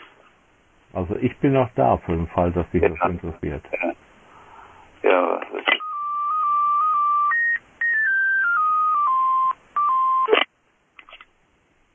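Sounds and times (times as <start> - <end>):
speech: 0.9 - 4.0
loud electronic phone ringtone with stepped beeping melody: 5.8 - 10.4.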